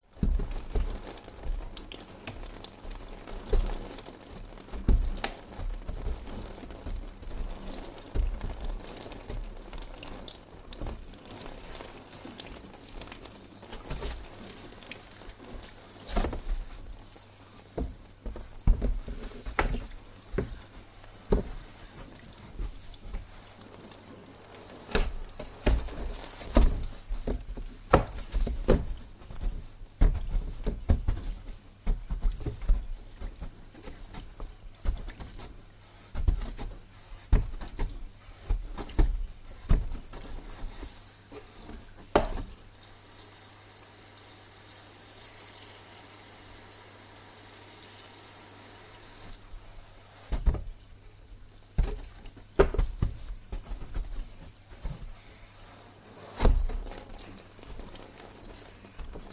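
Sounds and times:
window cleaner pole brush cleaning household windows: 0.0 - 43.8, 48.4 - 59.3
water dripping from window cleaning pole: 0.1 - 55.0.

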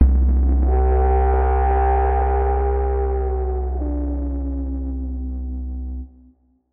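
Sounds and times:
dark age synth music: 0.0 - 6.4.

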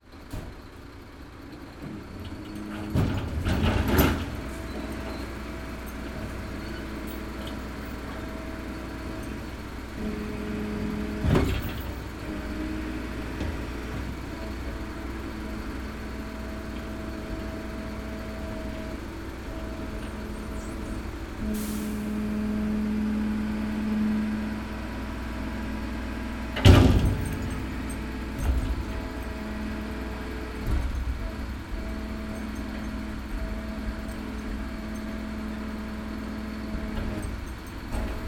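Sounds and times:
transportation truck unloading a skip: 0.1 - 38.2.

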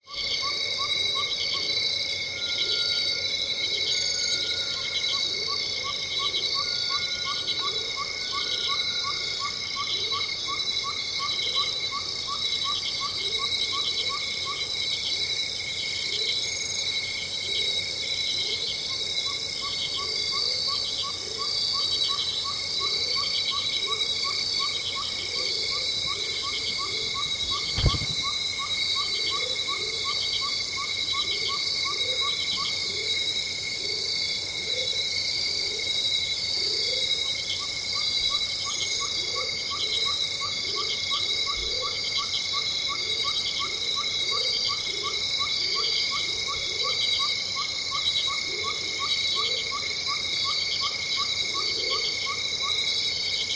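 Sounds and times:
loud insects in a tropical rainforest in Venezuela: 0.0 - 53.5.

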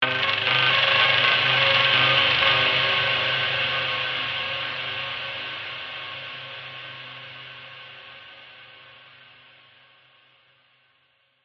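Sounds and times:
tense grating cinematic stab: 0.0 - 5.2.

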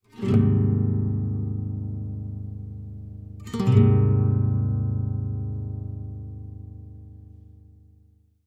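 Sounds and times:
discordant nylon string guitar strum: 0.0 - 7.8.

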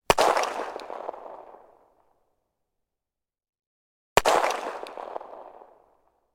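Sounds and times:
1911 pistol: 0.1 - 1.7, 4.2 - 5.8.

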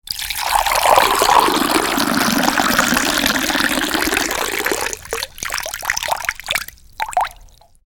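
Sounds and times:
milk pouring into jug: 0.1 - 7.7.

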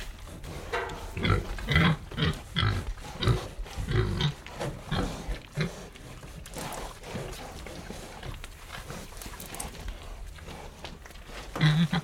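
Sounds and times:
Tamworth pigs grunting while eating: 0.0 - 12.0.

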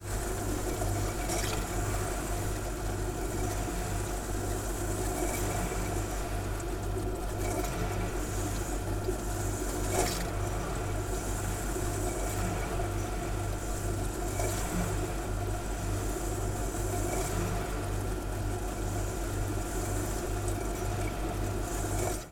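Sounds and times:
household refrigerator inside hum: 0.0 - 22.3.

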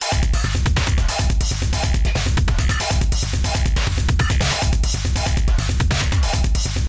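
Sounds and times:
electronic drum loop at 140 bpm: 0.0 - 6.8.

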